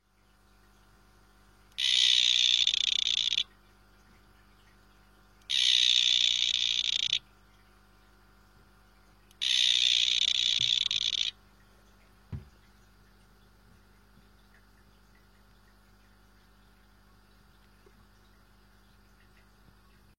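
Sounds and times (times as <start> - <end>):
Excidobates mysteriosus calling: 1.7 - 3.5, 5.5 - 7.2, 9.3 - 11.4.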